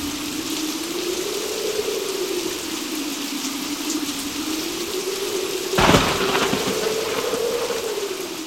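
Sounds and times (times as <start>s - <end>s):
heavy rain pouring: 0.0s - 8.4s.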